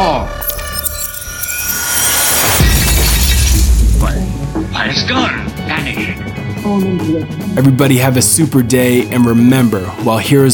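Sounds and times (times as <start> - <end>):
glass fragments clattering: 0.4 - 4.0
glass on a table edge shattering: 0.4 - 4.2
speech: 4.9 - 10.5.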